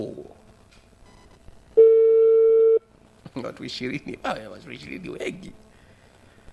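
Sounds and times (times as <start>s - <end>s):
telephone line tone during a call: 1.8s - 2.8s
speech: 3.4s - 5.7s.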